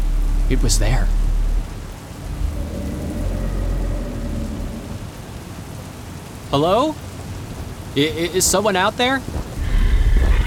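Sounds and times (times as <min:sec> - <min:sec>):
deep rumble of thunder: 0:00.0 - 0:05.5, 0:09.3 - 0:10.4
steady rain pouring down: 0:00.0 - 0:10.4
speech: 0:00.5 - 0:01.2, 0:06.5 - 0:07.1, 0:08.0 - 0:09.4.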